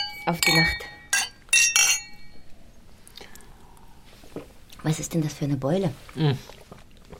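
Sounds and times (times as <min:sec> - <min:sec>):
glasses clinking in a toast: 0:00.0 - 0:02.4
speech: 0:00.3 - 0:01.0, 0:04.8 - 0:06.6.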